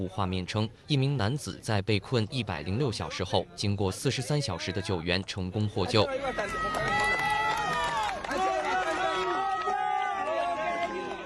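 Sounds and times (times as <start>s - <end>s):
speech: 0.0s - 7.0s
large crowd cheering and shouting at a rescue scene: 5.9s - 11.2s.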